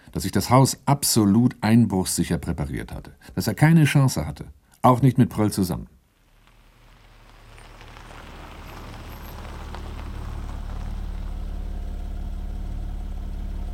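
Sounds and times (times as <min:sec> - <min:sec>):
speech: 0:00.2 - 0:06.0
Mercedes car engine idling: 0:06.1 - 0:13.7.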